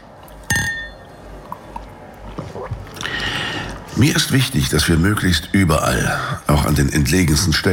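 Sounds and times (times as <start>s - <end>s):
glasses clinking in a toast: 0.4s - 1.2s
soft glass handling noises: 0.4s - 1.2s
speech: 4.0s - 7.7s.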